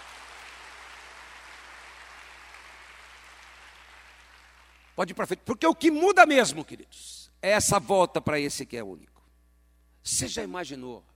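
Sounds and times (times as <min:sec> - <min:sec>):
crowd applauding: 0:00.0 - 0:05.0
speech: 0:05.0 - 0:09.1, 0:10.0 - 0:11.1.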